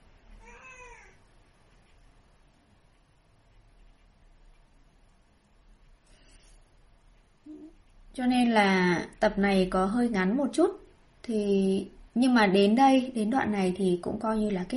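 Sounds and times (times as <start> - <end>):
cat meowing: 0.4 - 1.2
speech: 8.2 - 14.7.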